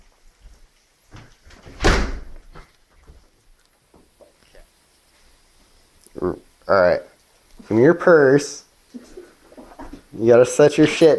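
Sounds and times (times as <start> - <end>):
quieter knocks and shuffling sounds: 0.0 - 6.2, 8.8 - 11.1
door swinging shut with a loud thud: 1.2 - 2.7
speech: 6.2 - 7.1, 7.7 - 9.1, 10.2 - 11.1.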